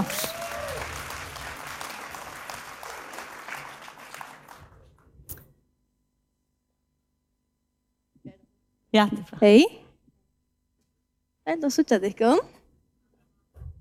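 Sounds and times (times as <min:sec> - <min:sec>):
audience clapping: 0:00.0 - 0:05.2
faint hum: 0:00.0 - 0:13.8
speech: 0:08.9 - 0:09.8, 0:11.6 - 0:12.6.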